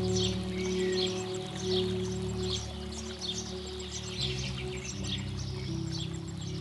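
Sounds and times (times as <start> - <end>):
many distant birds chirping and twittering: 0.0 - 6.5.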